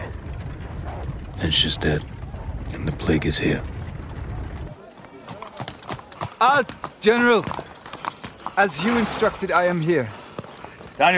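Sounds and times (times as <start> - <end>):
low rumbling: 0.0 - 4.8
horse hooves clip-clopping at a walking pace: 0.0 - 11.1
speech: 1.4 - 2.2, 2.8 - 3.8, 6.4 - 7.7, 8.6 - 10.2, 11.0 - 11.1.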